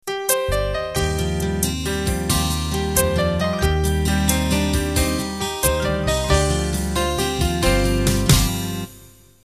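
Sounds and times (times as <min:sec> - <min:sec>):
triplet-based 12/8 ballad intro: 0:00.1 - 0:09.4.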